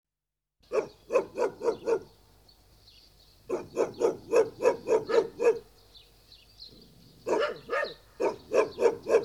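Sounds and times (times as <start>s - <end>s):
dog barking: 0.7s - 2.1s, 3.5s - 5.7s, 7.2s - 9.2s.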